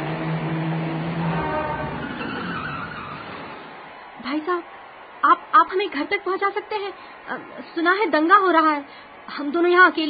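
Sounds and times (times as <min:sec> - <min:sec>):
car approaching on a road: 0:00.0 - 0:03.9
speech: 0:04.3 - 0:10.0.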